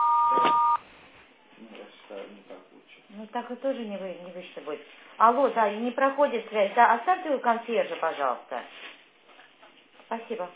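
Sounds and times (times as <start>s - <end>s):
answering machine beep tone: 0.0s - 0.8s
speech: 3.2s - 8.9s, 10.1s - 10.5s.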